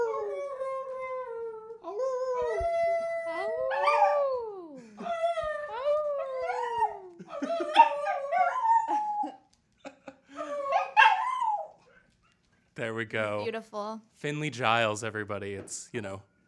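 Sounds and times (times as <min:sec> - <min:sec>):
dog howling in long wavering tones: 0:00.0 - 0:09.4, 0:10.4 - 0:11.8
dog yipping: 0:10.7 - 0:12.5
speech: 0:12.9 - 0:16.3.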